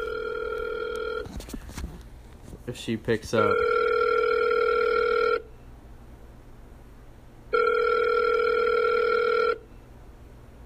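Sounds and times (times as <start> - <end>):
phone outgoing ringback tone after dialing a number: 0.0 - 1.3, 3.4 - 5.5, 7.5 - 9.7
rustling: 1.2 - 3.4
speech: 2.7 - 3.8.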